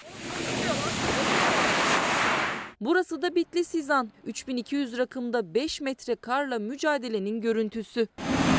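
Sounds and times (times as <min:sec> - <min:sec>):
surf washing onto Konyaaltı beach in Antalya Turkey: 0:00.0 - 0:02.7
speech: 0:02.8 - 0:08.4.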